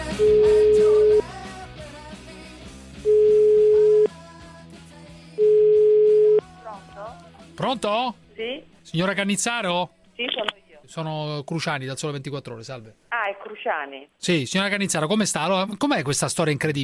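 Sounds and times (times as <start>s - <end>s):
speech: 0.2s - 0.5s, 7.7s - 10.0s, 10.9s - 16.8s
telephone tones of an outgoing call: 0.2s - 1.2s, 3.1s - 4.1s, 5.4s - 6.4s.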